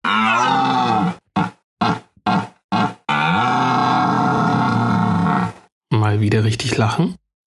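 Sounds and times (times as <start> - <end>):
deer grunting: 0.4 - 5.6
speech: 6.1 - 7.2.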